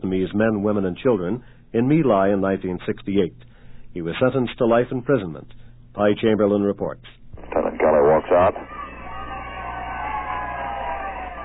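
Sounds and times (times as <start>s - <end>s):
speech: 0.0s - 8.7s
small crowd of about 100 people cheering at a court-martial: 8.5s - 11.4s.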